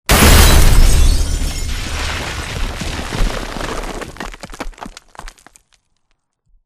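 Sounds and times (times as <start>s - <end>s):
explosion: 0.1s - 4.8s
debris falling: 0.1s - 6.2s.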